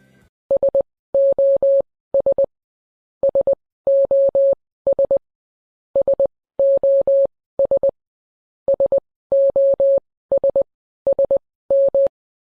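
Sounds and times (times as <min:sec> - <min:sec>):
high-pitched electronic tone beeping Morse SOS: 0:00.5 - 0:02.5, 0:03.2 - 0:05.2, 0:06.0 - 0:07.9, 0:08.7 - 0:12.1.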